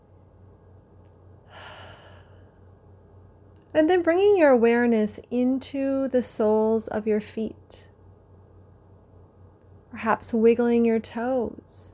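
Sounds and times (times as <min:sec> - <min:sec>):
faint low hum: 0:00.0 - 0:11.9
deep breath: 0:01.4 - 0:02.8
speech: 0:03.8 - 0:07.9, 0:10.0 - 0:11.9.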